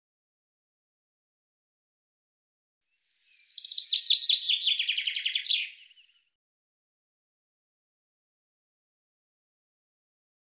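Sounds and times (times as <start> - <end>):
bird chirping and trilling: 3.2 - 6.2.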